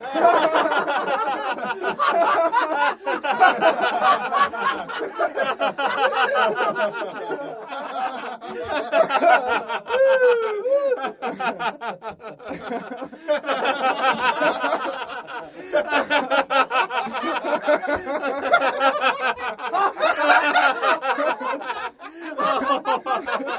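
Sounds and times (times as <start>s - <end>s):
indoor teenage party crowd: 0.0s - 10.0s, 11.0s - 23.5s
laughter: 0.0s - 23.5s.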